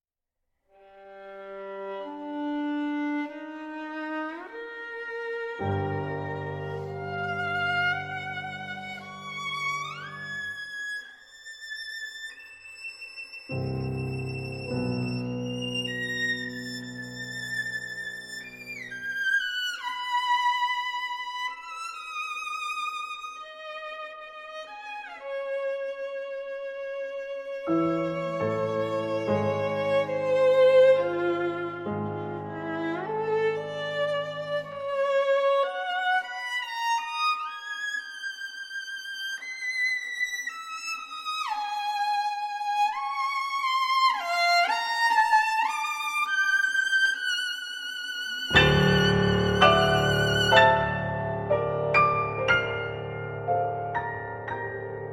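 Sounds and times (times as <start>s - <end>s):
sonata for violin and piano: 0.8s - 55.1s.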